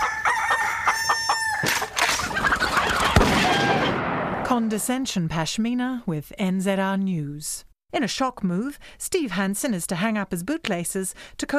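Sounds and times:
roosters crowing and clucking: 0:00.0 - 0:04.0
speech: 0:04.5 - 0:11.5.

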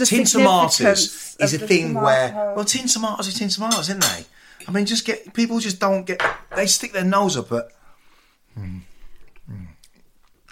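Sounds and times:
speech: 0:00.0 - 0:07.8, 0:08.6 - 0:08.9
crunchy chewing of crisp sourdough toast: 0:09.8 - 0:10.4.

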